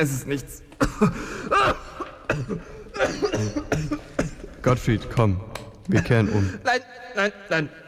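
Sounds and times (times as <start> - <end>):
speech: 0.0 - 1.8, 2.4 - 7.8
harsh raspy coughing fit: 0.8 - 4.6
strained gasping breaths: 0.8 - 4.6.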